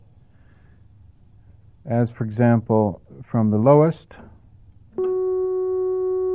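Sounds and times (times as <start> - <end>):
hum: 0.0 - 6.3
speech: 1.9 - 4.3
low-frequency sine wave tone from an oscillator: 5.0 - 6.3.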